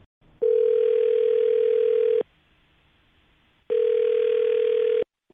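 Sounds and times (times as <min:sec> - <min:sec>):
telephone ringback tone: 0:00.4 - 0:02.2, 0:03.7 - 0:05.0.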